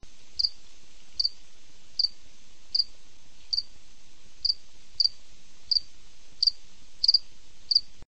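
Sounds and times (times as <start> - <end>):
faint background noise: 0.0 - 8.0
cricket chirping at night: 0.4 - 0.6, 1.2 - 1.4, 2.0 - 2.9, 3.5 - 3.7, 4.4 - 7.9.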